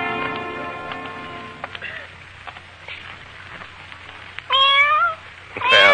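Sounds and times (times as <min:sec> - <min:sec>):
cat meowing: 0:04.5 - 0:05.9.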